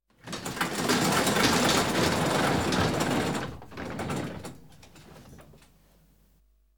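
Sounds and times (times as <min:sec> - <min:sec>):
garage door opening: 0:01.3 - 0:05.7.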